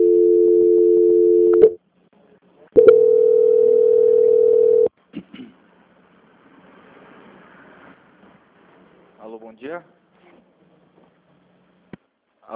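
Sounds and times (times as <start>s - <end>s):
two steady mid-pitched telephone tones during call transfer: 0.0s - 1.8s, 2.8s - 4.9s
speech: 9.6s - 10.0s.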